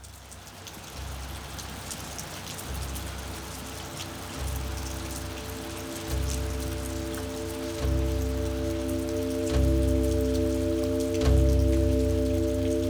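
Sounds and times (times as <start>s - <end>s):
rain: 0.0s - 12.8s
synth pads: 4.2s - 12.8s.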